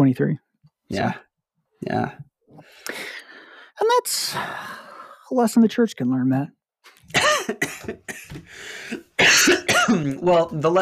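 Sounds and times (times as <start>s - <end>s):
speech: 0.0s - 3.0s, 3.8s - 10.8s
sick person coughing harshly: 7.1s - 10.2s.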